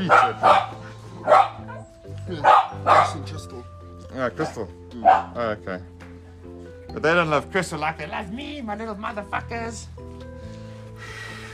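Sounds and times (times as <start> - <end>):
speech: 0.0 - 1.4, 2.3 - 5.9, 6.9 - 10.1
dog barking: 0.0 - 3.4, 4.4 - 5.4.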